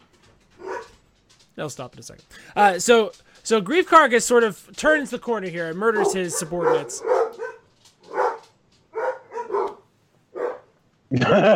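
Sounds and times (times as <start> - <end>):
faint noise: 0.0 - 11.5
single sharp dog bark: 0.6 - 1.0, 5.8 - 10.7
speech: 1.6 - 7.2, 11.1 - 11.5
laughter: 11.1 - 11.5.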